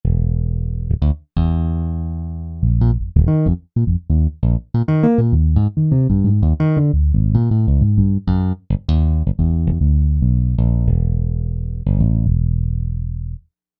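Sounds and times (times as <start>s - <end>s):
tapped bass guitar: 0.0s - 13.4s.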